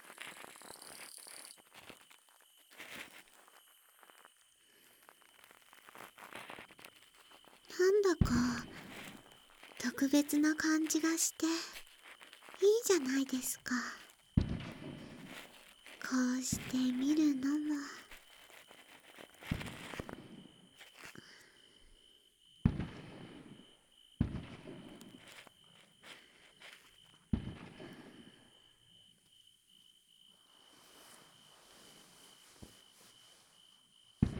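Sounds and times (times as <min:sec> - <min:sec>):
insects droning at night: 0:00.0 - 0:34.3
distant fireworks bursting at night: 0:05.4 - 0:22.0, 0:22.6 - 0:29.1, 0:34.1 - 0:34.3
speech: 0:08.0 - 0:08.8, 0:10.0 - 0:11.7, 0:12.6 - 0:14.0, 0:16.1 - 0:18.0.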